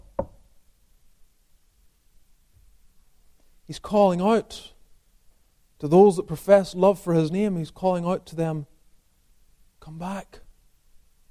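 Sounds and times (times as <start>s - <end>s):
single sharp knock on a door: 0.0s - 0.4s
quiet low hiss: 0.0s - 11.2s
speech: 3.7s - 4.8s, 5.8s - 8.7s, 9.8s - 10.4s.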